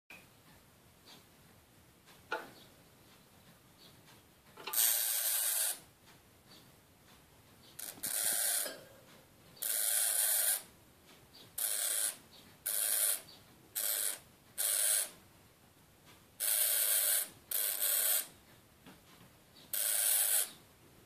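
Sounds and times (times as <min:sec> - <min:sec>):
agitated hamster squeaking: 0:04.6 - 0:05.8, 0:07.7 - 0:08.8, 0:09.6 - 0:10.7, 0:11.5 - 0:15.2, 0:16.4 - 0:18.3, 0:19.7 - 0:20.6.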